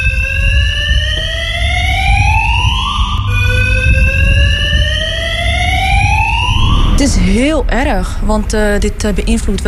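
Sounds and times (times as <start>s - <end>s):
electronic fire alarm wailing in a parking garage: 0.0s - 7.5s
low rumbling reverberation in a parking garage: 0.0s - 9.6s
speech: 7.0s - 9.6s.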